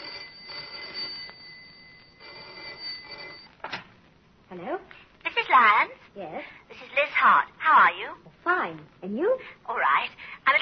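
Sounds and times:
telephone ringing: 0.0s - 3.6s
speech: 4.5s - 10.6s.

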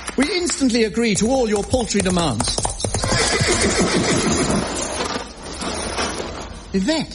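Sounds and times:
speech: 0.2s - 2.7s, 6.7s - 7.1s
horse neighing in a long harsh whinny: 2.9s - 4.9s.

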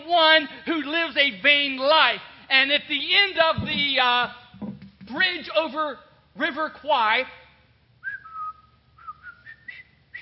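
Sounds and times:
speech: 0.1s - 4.4s, 5.1s - 7.4s
person whistling a tune: 8.0s - 10.1s.

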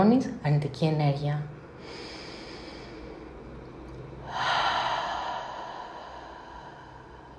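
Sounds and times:
speech: 0.0s - 2.1s
slow deep breathing during a guided relaxation exercise: 1.8s - 7.3s.

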